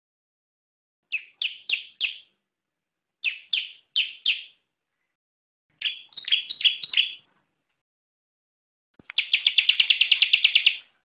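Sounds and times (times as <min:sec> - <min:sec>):
bar-winged prinia chirping: 0:01.1 - 0:02.4, 0:03.2 - 0:05.1, 0:05.7 - 0:07.3, 0:09.0 - 0:11.0.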